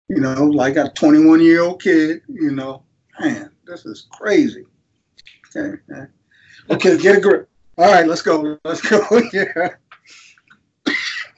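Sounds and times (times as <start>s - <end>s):
speech: 0.1s - 10.3s
laughter: 8.7s - 10.3s
person coughing with a harsh rasp: 10.9s - 11.3s.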